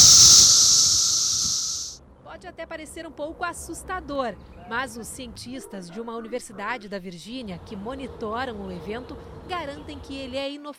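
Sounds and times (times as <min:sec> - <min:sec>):
cicada chorus buzzing: 0:00.0 - 0:02.0, 0:07.4 - 0:10.4
speech: 0:02.4 - 0:10.7.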